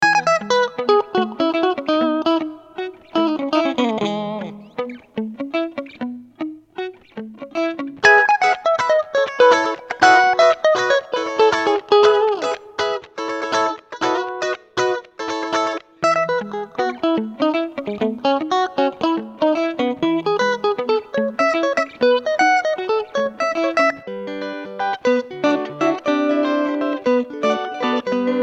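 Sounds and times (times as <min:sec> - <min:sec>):
African guitars playing: 0:00.0 - 0:28.4.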